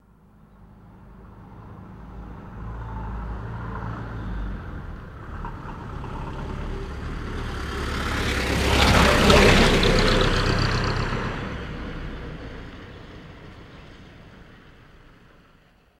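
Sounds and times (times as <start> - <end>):
English taxi driving: 3.4 - 15.5.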